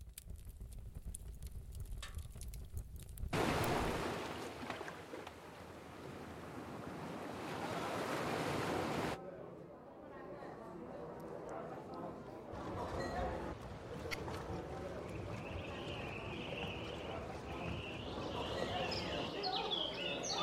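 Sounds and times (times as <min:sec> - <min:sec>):
wind: 0:00.0 - 0:20.4
water lapping: 0:03.3 - 0:09.2, 0:12.5 - 0:20.4
beach surf crashing waves: 0:03.4 - 0:09.2.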